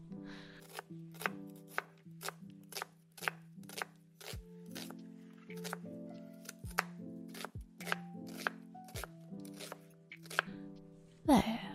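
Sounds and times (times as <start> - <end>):
music: 0.0 - 11.7
knife chopping food in half on a board: 0.6 - 5.8, 6.4 - 10.5.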